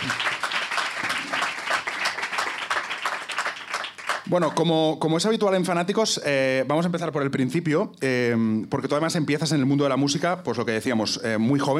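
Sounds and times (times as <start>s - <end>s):
crowd applauding a musician guest at an interview: 0.0s - 4.6s
speech: 4.3s - 11.7s.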